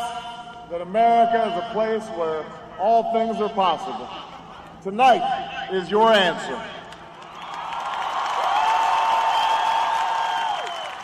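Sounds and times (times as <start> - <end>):
speech: 0.7 - 6.8
large crowd cheering in a park: 7.1 - 11.0
high whoops from a crowd: 7.3 - 11.0.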